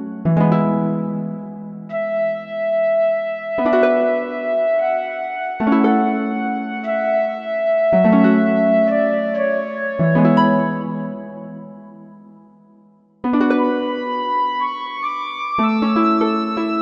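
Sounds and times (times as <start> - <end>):
harp flute tone on a Korg MSC-1S: 0.4 - 12.2, 13.5 - 16.8.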